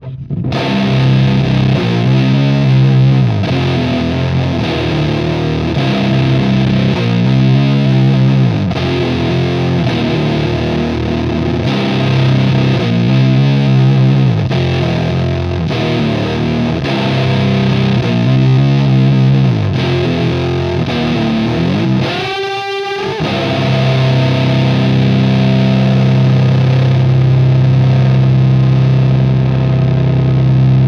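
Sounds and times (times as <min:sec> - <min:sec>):
flat guitar with roar: 0:00.0 - 0:30.8.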